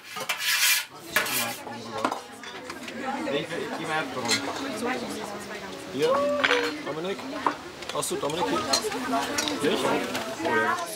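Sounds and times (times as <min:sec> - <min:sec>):
utensils scraping and rattling against a cooking pot: 0:00.0 - 0:01.7
speech: 0:03.1 - 0:10.9.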